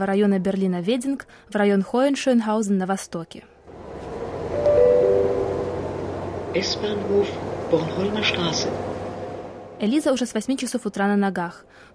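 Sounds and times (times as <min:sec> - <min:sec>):
speech: 0:00.0 - 0:03.5, 0:06.5 - 0:08.9, 0:09.8 - 0:11.9
high tonal whine: 0:03.7 - 0:09.8
tram rolling through Berlin carrying a passenger: 0:03.7 - 0:10.0.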